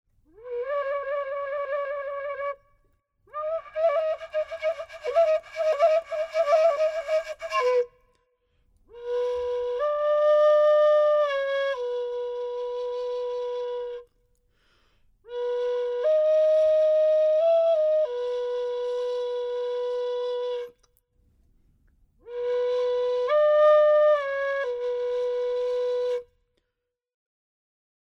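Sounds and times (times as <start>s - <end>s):
clay flute: 0.2s - 14.3s, 15.2s - 21.0s, 22.2s - 26.7s.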